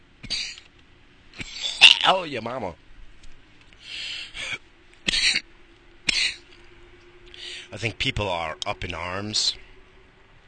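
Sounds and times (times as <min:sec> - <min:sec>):
speech: 0:02.1 - 0:02.8, 0:07.7 - 0:09.6
harsh raspy coughs: 0:04.4 - 0:05.5, 0:06.1 - 0:06.4.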